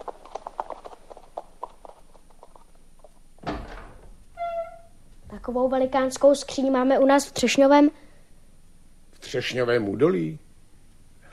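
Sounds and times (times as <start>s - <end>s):
horse hooves clip-clopping as it is led to the stable: 0.0s - 3.4s
door thud: 3.4s - 4.8s
tonal creak or whine: 3.4s - 5.0s
speech: 5.5s - 8.0s, 9.3s - 10.4s.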